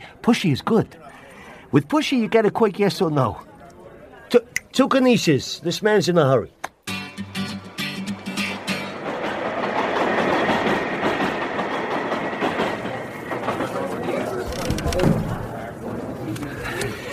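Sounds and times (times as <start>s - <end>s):
speech: 0.2s - 3.5s, 4.3s - 6.6s
subway train clattering along the rails: 7.3s - 17.1s.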